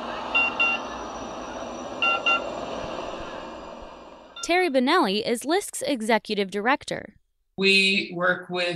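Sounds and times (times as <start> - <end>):
Phoenix Metro Light Rail train rumbling: 0.0 - 4.8
short electronic beeps: 0.3 - 0.9, 2.0 - 2.5, 4.4 - 4.6
speech: 4.5 - 8.7.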